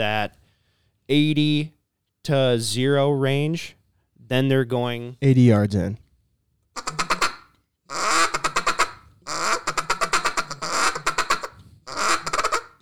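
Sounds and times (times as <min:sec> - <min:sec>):
speech: 0:00.0 - 0:00.4, 0:01.1 - 0:06.0
duck call blown in a feeding chuckle: 0:06.8 - 0:12.7.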